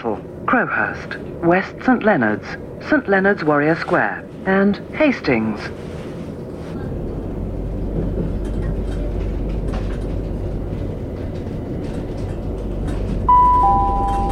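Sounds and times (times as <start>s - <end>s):
speech: 0.0s - 6.0s
passenger train travelling on the line to Hastings heard from on board: 0.0s - 14.3s
two-note chime: 13.3s - 14.3s.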